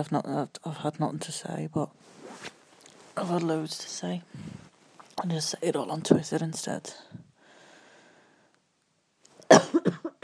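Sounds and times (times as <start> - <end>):
speech: 0.0 - 2.6, 3.2 - 4.6, 5.2 - 7.2
person coughing with rasping hacks: 9.5 - 10.2.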